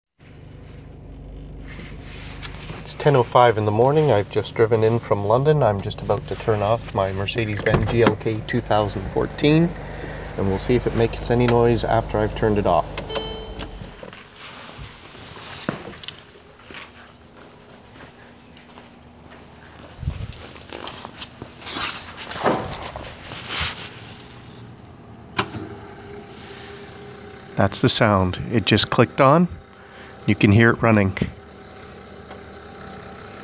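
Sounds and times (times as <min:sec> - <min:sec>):
diesel fuel pump whirring: 0:00.4 - 0:14.2, 0:25.4 - 0:33.4.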